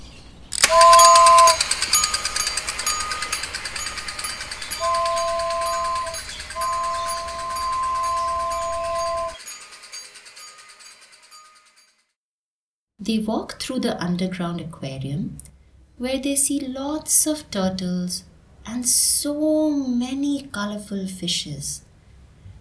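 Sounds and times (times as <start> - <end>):
zoo toy train ride rattling along its track: 0.5 - 12.2
two-tone toy train whistle toots: 0.6 - 9.6
speech: 13.1 - 21.9.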